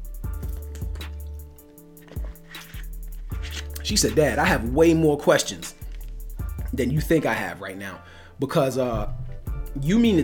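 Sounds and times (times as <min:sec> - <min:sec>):
wet sipping and swallowing: 0:00.2 - 0:04.7, 0:05.4 - 0:06.7
speech: 0:03.9 - 0:05.8, 0:06.8 - 0:09.2, 0:09.8 - 0:10.2.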